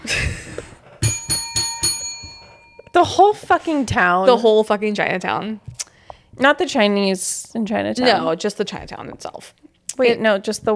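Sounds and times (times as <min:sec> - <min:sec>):
bell ringing: 0:01.0 - 0:03.4
speech: 0:03.0 - 0:05.7, 0:06.4 - 0:10.7.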